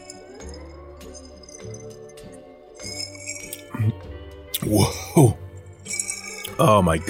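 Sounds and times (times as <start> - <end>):
drinking glass holding a tiki drink clinking as it is lifted: 0.0 - 3.7, 5.8 - 6.6
speech: 4.6 - 5.4, 6.6 - 7.0.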